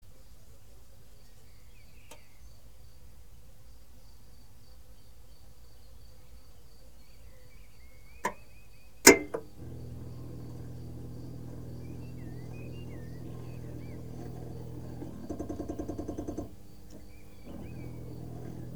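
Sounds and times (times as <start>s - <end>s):
hot air conditioning starting and stopping: 9.1s - 18.7s.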